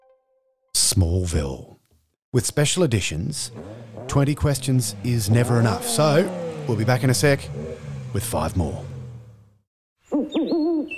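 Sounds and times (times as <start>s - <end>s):
speech: 0.9s - 1.7s, 2.3s - 8.9s
owl hooting: 10.1s - 10.9s.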